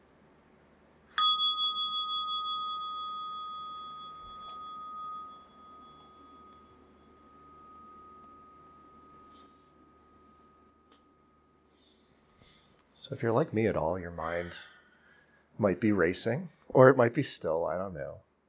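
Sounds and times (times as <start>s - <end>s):
meditation bell ringing in a quiet room: 1.1s - 12.7s
speech: 13.0s - 14.7s, 15.6s - 18.3s.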